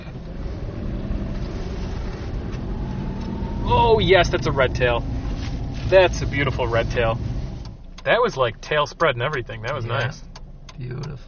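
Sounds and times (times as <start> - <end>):
truck rumbling past: 0.0 - 7.8
speech: 3.7 - 5.2, 5.9 - 7.3, 8.0 - 11.2.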